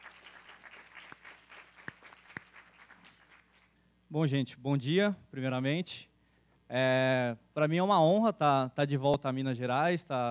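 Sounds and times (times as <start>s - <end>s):
audience applause: 0.0s - 3.7s
sharp louder claps near the front: 0.0s - 3.7s
speech: 4.1s - 6.1s, 6.7s - 10.3s.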